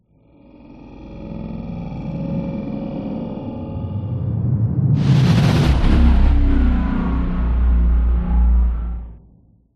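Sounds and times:
resonating drone: 0.6 - 9.2
horror growling into heavy compressed whoosh: 4.9 - 9.2.

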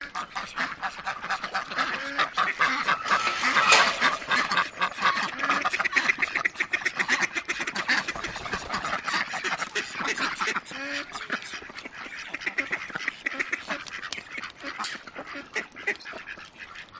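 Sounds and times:
ducks calling at feeding time on an urban farm: 0.0 - 16.9.

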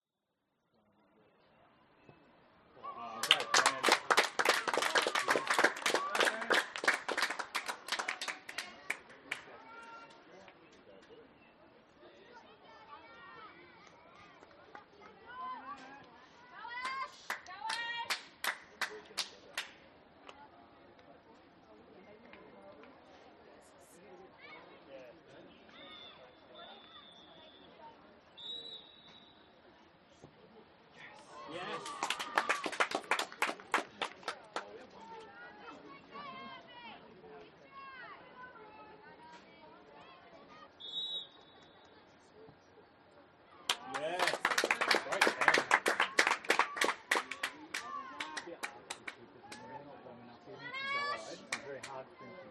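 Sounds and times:
parents and children cheering at a school soccer game: 2.8 - 9.4, 31.2 - 34.4, 43.7 - 49.7
parents and children clapping at a school soccer game: 3.1 - 9.6, 13.8 - 15.2, 16.7 - 20.4, 31.2 - 35.0, 43.7 - 49.7, 51.3 - 52.0.

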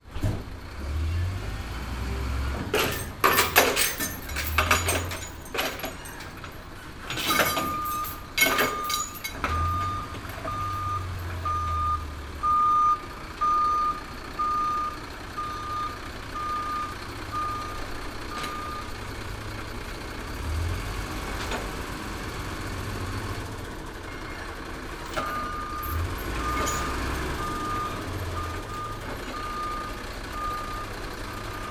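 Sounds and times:
transportation truck moving after unloading a skip: 0.0 - 31.6
loose chains banging around on a truck: 2.7 - 11.4, 25.0 - 27.8.

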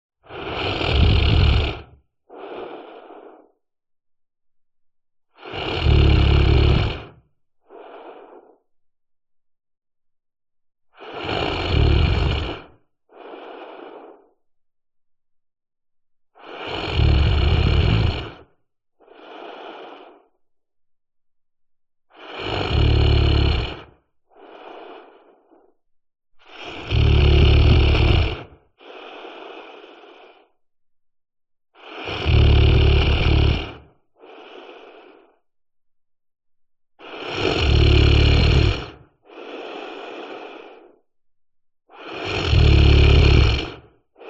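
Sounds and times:
fantasy giant snoring: 0.3 - 3.6, 5.4 - 8.6, 11.0 - 14.3, 16.4 - 20.3, 22.1 - 25.7, 26.4 - 30.6, 31.8 - 35.4, 37.0 - 41.1, 41.9 - 44.2.

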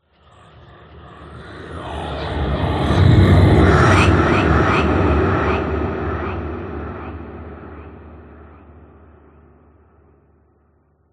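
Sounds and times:
ghostly whoosh: 1.5 - 9.3.

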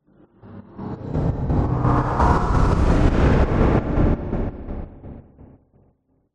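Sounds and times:
slow dark chopper stutter sweep with chorus: 0.2 - 5.6.

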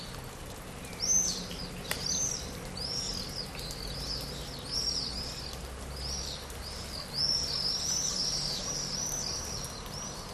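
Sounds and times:
swallows twittering in a wet misty spring forest in Cyprus: 0.9 - 10.3.

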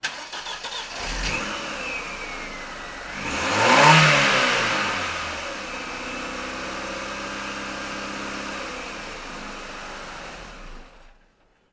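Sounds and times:
Ford Escort Mk5 engine starting, revving and switching off in a garage: 0.0 - 11.2.

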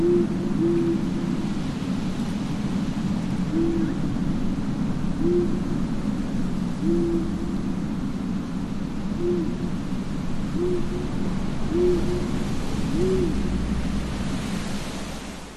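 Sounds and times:
owl hooting at night in a graveyard: 0.0 - 1.5, 3.4 - 4.2, 5.0 - 5.8, 6.7 - 7.7, 9.1 - 14.0
steady roaring night wind in a graveyard: 0.0 - 15.5.

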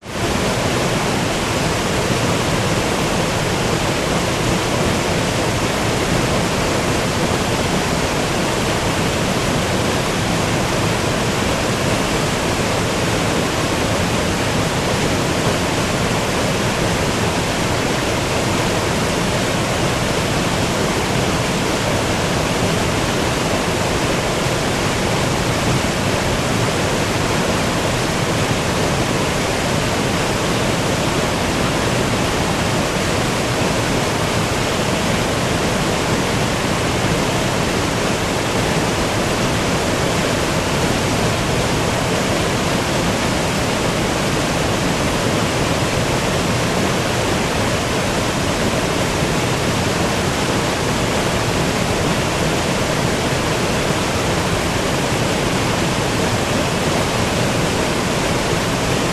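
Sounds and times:
waterfall in Allgaeu Germany: 0.0 - 59.1.

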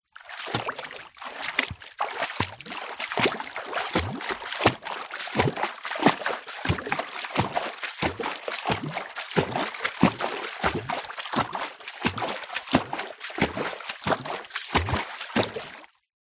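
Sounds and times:
footsteps in deep water: 0.0 - 16.0.

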